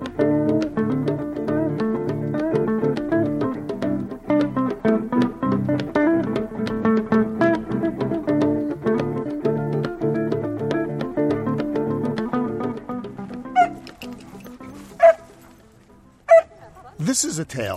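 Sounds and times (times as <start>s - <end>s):
plucked chord-like music: 0.0s - 16.2s
male puppy yipping: 13.6s - 13.9s, 14.9s - 15.4s, 16.3s - 16.6s
speech: 17.2s - 17.7s.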